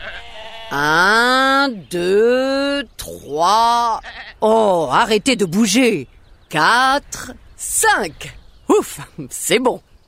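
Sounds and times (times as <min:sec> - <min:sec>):
sheep bleating: 0:00.0 - 0:01.5, 0:03.8 - 0:04.5
speech: 0:00.7 - 0:09.9.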